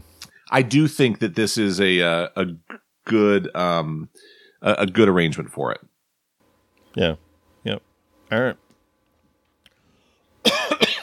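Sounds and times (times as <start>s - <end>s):
speech: 0.5s - 5.9s, 6.9s - 8.6s
person coughing: 10.4s - 11.0s.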